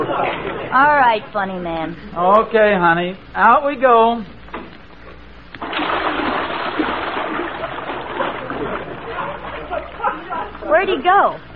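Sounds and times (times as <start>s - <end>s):
laughter: 0.0s - 0.7s, 8.0s - 11.0s
speech: 0.7s - 4.4s, 10.7s - 11.5s
water splashing and bubbling: 5.5s - 10.2s.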